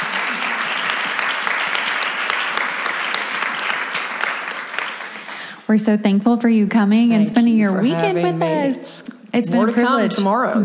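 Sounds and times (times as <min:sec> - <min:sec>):
audience applause: 0:00.0 - 0:05.6
speech: 0:05.7 - 0:10.6.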